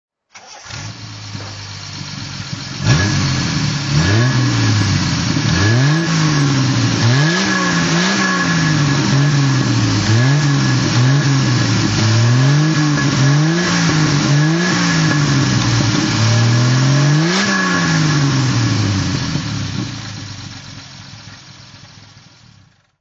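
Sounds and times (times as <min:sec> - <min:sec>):
TR3 engine throttle revving: 0:00.4 - 0:22.9.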